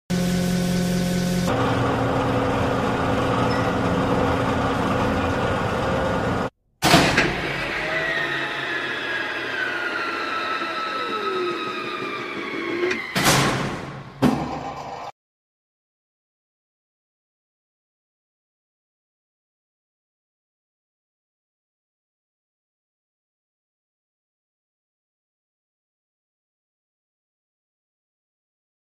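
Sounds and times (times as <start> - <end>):
drilling rig: 0.1 - 15.1.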